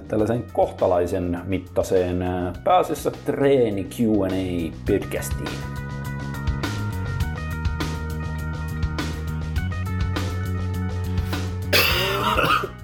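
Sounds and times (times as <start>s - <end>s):
speech: 0.1s - 5.8s
steady music with a regular beat: 4.2s - 12.6s
loud burst of coughing: 11.7s - 12.8s.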